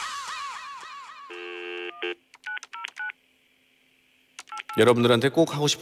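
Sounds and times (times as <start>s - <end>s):
steady telephone tone: 1.3s - 3.2s
speech: 4.8s - 5.8s.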